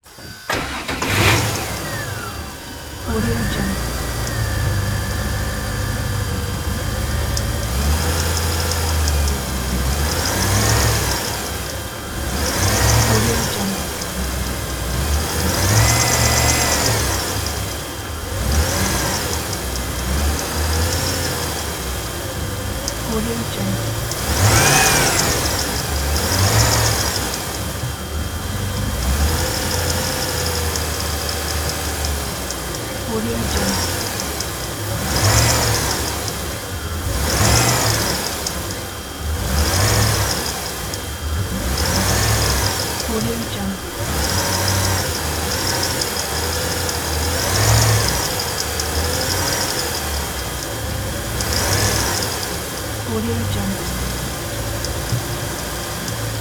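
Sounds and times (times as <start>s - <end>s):
boat engine idling: 0.0s - 56.3s.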